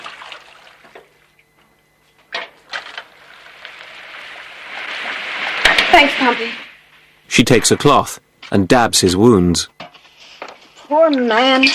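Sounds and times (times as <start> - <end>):
water pouring into a metal bowl: 3.1 - 6.6
speech: 6.0 - 6.6, 7.3 - 9.8, 11.0 - 11.7.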